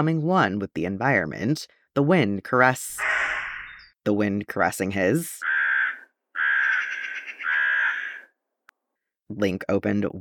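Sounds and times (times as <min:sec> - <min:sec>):
speech: 0:00.0 - 0:03.1, 0:04.0 - 0:05.6, 0:09.3 - 0:10.1
crow cawing: 0:05.4 - 0:08.3.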